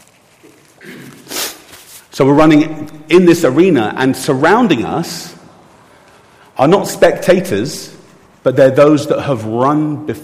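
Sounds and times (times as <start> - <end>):
person sniffing nervously through the nose: 0.8 - 2.1
speech: 2.2 - 5.4, 6.6 - 10.2.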